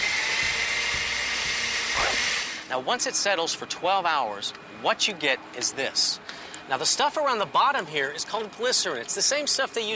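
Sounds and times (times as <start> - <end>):
blender mixing vegetable oil mixture: 0.0 - 2.7
speech: 2.7 - 9.9.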